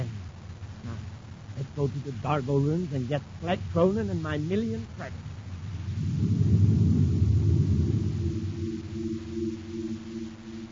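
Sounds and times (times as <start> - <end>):
lingering low droning hum: 0.0 - 10.6
speech: 1.6 - 5.3
deep heavy spaceship engine roaring: 5.6 - 10.6.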